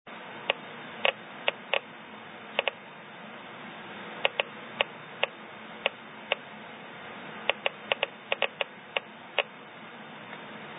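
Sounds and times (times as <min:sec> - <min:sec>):
gamma radiation counts from thorite at Kemp Uranium Mine in Cardiff Township Ontario: 0:00.3 - 0:02.9, 0:04.2 - 0:06.8, 0:07.4 - 0:09.6.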